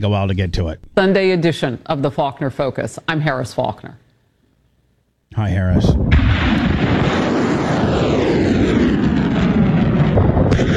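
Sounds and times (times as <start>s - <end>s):
speech: 0.0s - 4.0s, 5.3s - 6.6s
U.S. missiles being launched: 5.9s - 10.7s.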